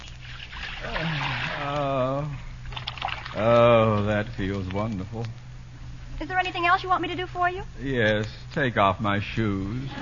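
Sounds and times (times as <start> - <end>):
hot water pouring into a basin for soaking feet: 0.2 - 1.7, 2.7 - 3.4
speech: 3.4 - 5.5, 6.2 - 10.0.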